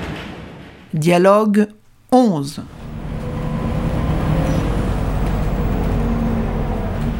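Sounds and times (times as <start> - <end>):
faint hiss of street noise: 0.9 - 7.1
speech: 1.0 - 2.8
city bus heavy diesel engine rumbling: 2.7 - 7.1
city bus air brakes squealing: 3.2 - 6.8.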